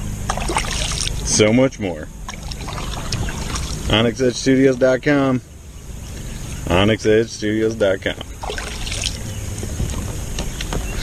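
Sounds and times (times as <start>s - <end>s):
water sloshing and lapping around a small kayak on a lake: 0.0s - 1.4s, 2.2s - 4.2s, 8.0s - 11.0s
steady breezy outdoor rumble: 0.0s - 11.0s
soft kayak paddle splashes: 0.3s - 1.2s, 2.3s - 4.0s, 8.3s - 9.2s
speech: 1.3s - 2.2s, 3.9s - 5.5s, 6.7s - 8.6s.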